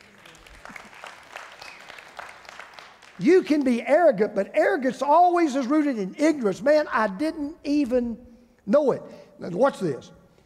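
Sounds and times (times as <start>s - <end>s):
audience applause: 0.0s - 3.2s
speech: 3.2s - 10.2s.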